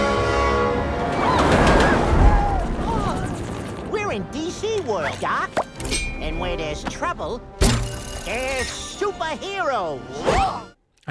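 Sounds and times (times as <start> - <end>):
sustained horn-like tone: 0.0 - 1.2
runaway train rumbling on rails: 0.0 - 3.4
speech: 4.2 - 7.6, 8.2 - 11.0.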